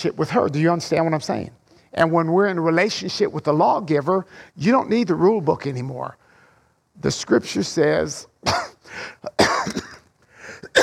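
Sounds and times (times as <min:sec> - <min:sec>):
speech: 0:00.0 - 0:06.2, 0:07.0 - 0:09.8
person coughing: 0:08.4 - 0:10.8.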